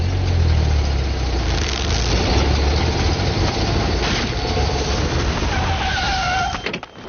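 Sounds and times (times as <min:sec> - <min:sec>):
car engine approaching and idling: 0:00.0 - 0:05.5
high squeal: 0:02.7 - 0:07.0.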